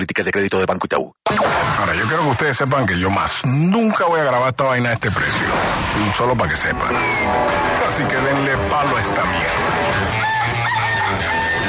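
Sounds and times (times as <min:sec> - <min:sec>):
speech: 0:00.0 - 0:10.3
rooster crowing: 0:09.9 - 0:11.6.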